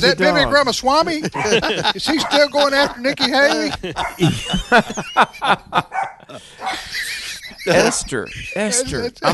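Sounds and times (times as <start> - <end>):
laughter: 0.0 - 9.3
speech: 0.0 - 9.3
dog barking: 1.3 - 3.1, 4.0 - 4.3, 5.9 - 6.9.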